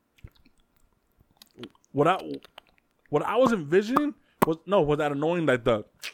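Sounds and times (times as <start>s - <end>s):
wet lip smacking: 0.0s - 4.5s
moist mouth clicks: 0.1s - 4.6s, 6.0s - 6.1s
speech: 1.6s - 5.9s.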